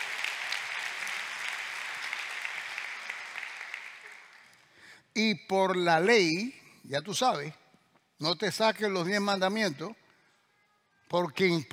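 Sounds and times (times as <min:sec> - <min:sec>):
audience applauding: 0:00.0 - 0:04.7
speech: 0:05.2 - 0:07.6, 0:08.2 - 0:10.0, 0:11.1 - 0:11.7.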